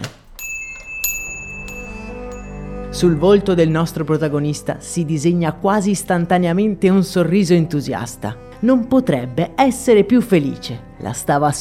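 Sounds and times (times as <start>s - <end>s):
pharmacy main door bell jingling: 0.4s - 2.9s
speech: 3.0s - 11.6s.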